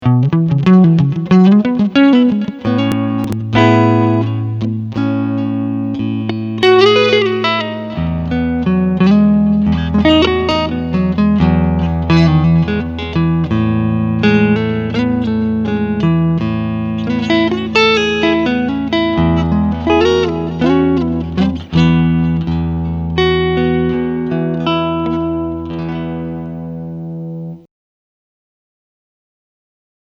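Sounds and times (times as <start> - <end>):
clean electric guitar lick on front single-coil pickup: 0.0 - 27.6.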